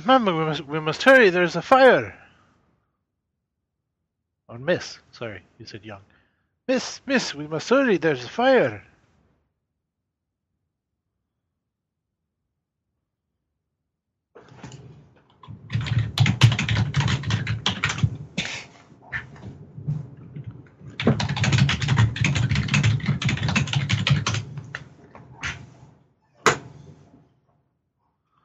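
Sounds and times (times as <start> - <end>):
speech: 0.0 - 2.2, 4.5 - 6.1, 6.7 - 8.9
typing on a computer keyboard: 15.4 - 18.1, 20.9 - 24.8.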